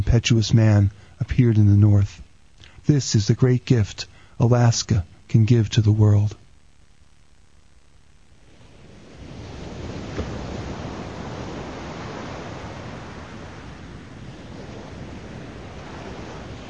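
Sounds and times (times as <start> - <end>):
speech: 0.1 - 2.2, 2.9 - 6.4
ocean waves breaking on the shore: 8.4 - 16.6
slight wind rush: 8.5 - 16.6.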